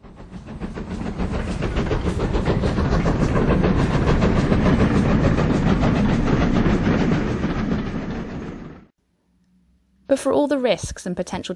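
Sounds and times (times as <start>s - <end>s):
express train wheels clattering on rails: 0.0s - 8.9s
speech: 10.2s - 11.5s.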